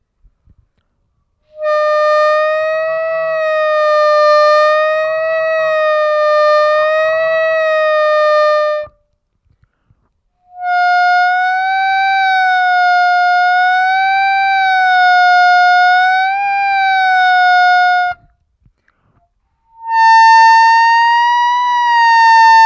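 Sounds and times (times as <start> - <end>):
harmonica overbends bending on fourth fifth and sixth holes: 1.6 - 8.9, 10.5 - 18.2, 19.7 - 22.6.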